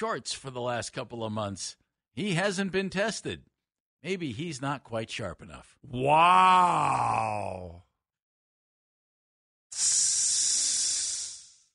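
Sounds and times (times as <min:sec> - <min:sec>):
speech: 0:00.0 - 0:07.8, 0:09.8 - 0:10.1
sizzling hiss: 0:09.8 - 0:11.7.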